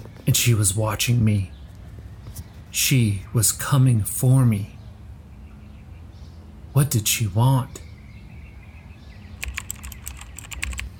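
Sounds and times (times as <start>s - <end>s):
speech: 0.3s - 1.6s, 2.8s - 4.8s, 6.8s - 7.9s
typing on a computer keyboard: 9.4s - 10.9s.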